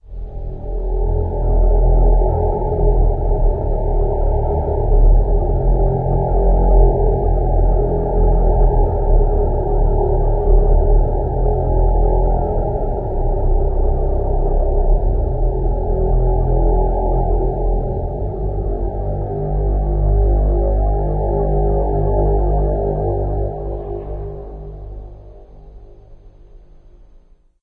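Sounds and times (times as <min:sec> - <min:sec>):
creature melody drone: 0:00.0 - 0:26.6.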